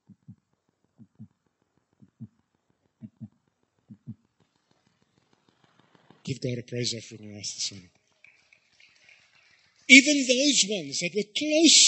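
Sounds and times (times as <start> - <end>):
slow steady heartbeat: 0.0 - 0.4, 1.0 - 1.4, 2.0 - 2.4, 3.0 - 3.3, 3.9 - 4.2
speech: 6.3 - 8.0, 9.9 - 11.8.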